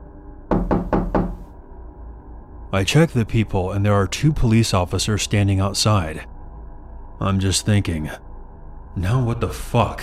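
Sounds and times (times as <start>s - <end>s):
faint low hum: 0.0s - 10.0s
firm knocks on a home door: 0.5s - 1.5s
speech: 2.7s - 6.3s, 7.2s - 8.2s, 9.0s - 10.0s.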